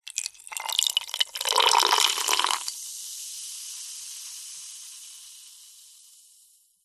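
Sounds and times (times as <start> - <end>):
small amount of cola pouring into glass with ice: 0.0 - 2.8
cola fizzing in glass with ice: 0.0 - 6.4.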